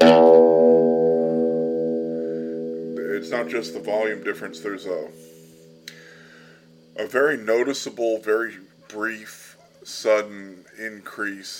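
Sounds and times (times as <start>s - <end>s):
plucked electric guitar note with factory wiring: 0.0s - 7.1s
speech: 3.3s - 5.4s, 7.0s - 11.5s.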